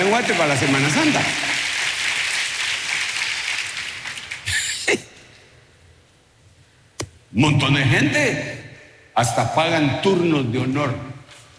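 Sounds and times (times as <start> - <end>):
crowd applauding with dense clapping: 0.0 - 4.9
speech: 0.1 - 1.6, 7.4 - 8.6, 9.2 - 11.1.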